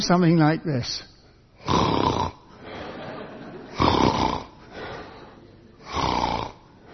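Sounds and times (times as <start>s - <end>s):
speech: 0.0s - 1.8s
man snoring asleep in church: 1.6s - 2.5s, 3.7s - 5.0s, 5.8s - 6.9s
laughter: 2.6s - 3.9s.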